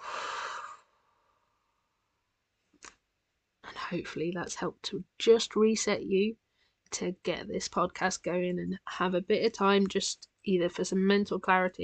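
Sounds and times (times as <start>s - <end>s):
deep breath in and out: 0.0s - 1.6s
speech: 3.9s - 11.8s.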